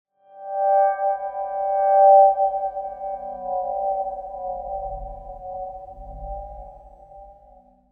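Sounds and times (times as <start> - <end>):
mysterious circular ringing tone: 0.4 - 7.8.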